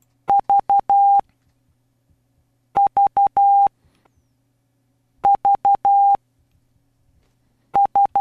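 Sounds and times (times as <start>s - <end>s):
Morse code beeps in a single tone: 0.3s - 1.2s, 2.8s - 3.7s, 5.3s - 6.2s, 7.8s - 8.1s.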